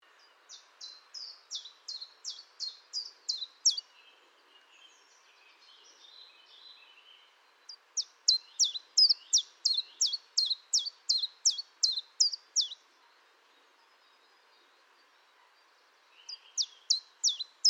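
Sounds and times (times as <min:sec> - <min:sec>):
common chiffchaff singing: 0:00.2 - 0:04.0, 0:07.6 - 0:12.8, 0:16.1 - 0:17.6.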